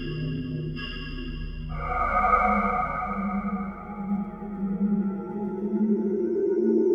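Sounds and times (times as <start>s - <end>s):
space noise: 0.2s - 6.8s.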